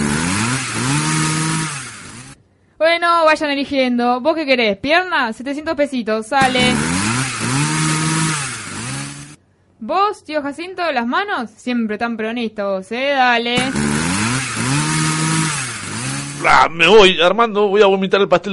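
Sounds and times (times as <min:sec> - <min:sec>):
chainsaw revving: 0:00.0 - 0:02.4, 0:06.4 - 0:09.4, 0:13.6 - 0:16.8
speech: 0:03.0 - 0:07.1, 0:09.8 - 0:14.0, 0:16.4 - 0:18.5.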